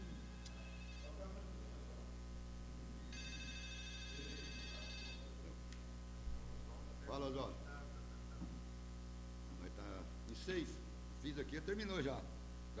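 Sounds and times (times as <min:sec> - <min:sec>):
telephone ringing with electronic trill: 0:00.0 - 0:01.2, 0:03.0 - 0:05.4
faint murmur: 0:00.0 - 0:12.7
speech: 0:07.1 - 0:07.7, 0:09.8 - 0:12.7.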